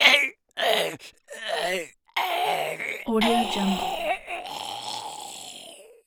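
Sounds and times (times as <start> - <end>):
zombie death growl: 0.1 - 6.0.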